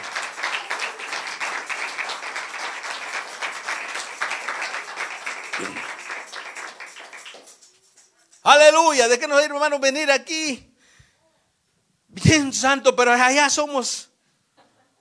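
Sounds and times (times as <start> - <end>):
crowd applauding with many hands clapping: 0.0 - 8.4
speech: 5.6 - 5.8, 8.4 - 10.7, 12.4 - 14.1.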